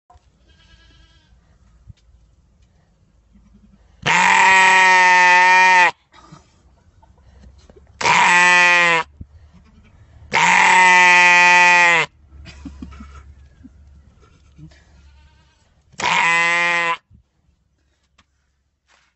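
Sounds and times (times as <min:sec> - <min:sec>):
goat screaming: 0:04.1 - 0:05.9, 0:08.0 - 0:09.1, 0:10.3 - 0:12.1, 0:16.0 - 0:17.0.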